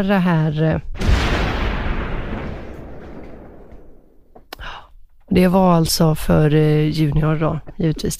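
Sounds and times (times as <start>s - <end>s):
speech: 0.0s - 1.0s, 5.3s - 8.1s
loud cannon blast with deep booming rumble: 1.0s - 4.4s
faint crackle: 1.0s - 5.3s.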